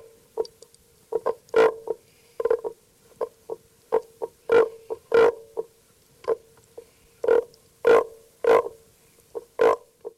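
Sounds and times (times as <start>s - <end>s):
common frog giving soft low croaks: 1.1s - 6.5s, 7.2s - 10.1s.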